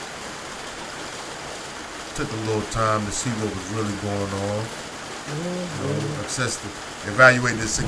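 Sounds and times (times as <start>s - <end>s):
steady rain: 0.0s - 7.8s
speech: 2.2s - 7.8s
low voice humming or murmuring: 5.3s - 6.7s.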